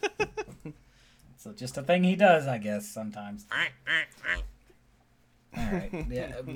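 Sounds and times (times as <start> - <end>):
speech: 1.4 - 4.5, 5.7 - 6.5
person imitating a duck with nasal quacks: 3.5 - 4.6.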